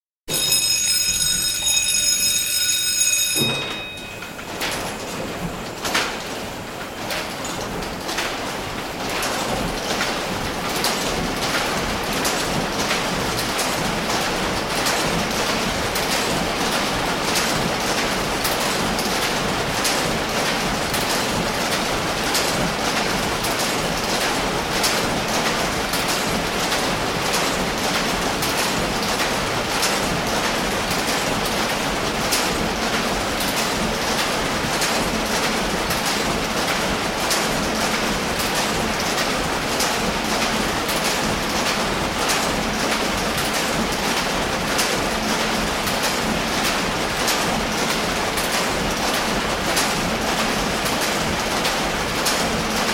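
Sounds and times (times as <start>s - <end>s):
Cosser letterpress starting, running and stopping: 0.3s - 52.9s.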